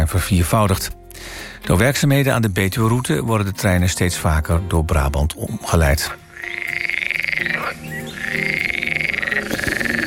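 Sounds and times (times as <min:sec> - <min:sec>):
speech: 0:00.1 - 0:06.2, 0:07.4 - 0:08.7
frog croaking: 0:06.2 - 0:10.0.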